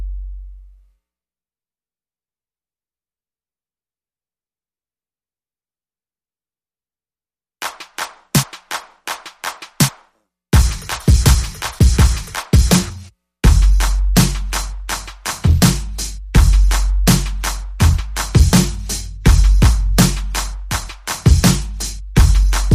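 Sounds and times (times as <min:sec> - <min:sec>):
drums and percussion: 0:07.6 - 0:22.7.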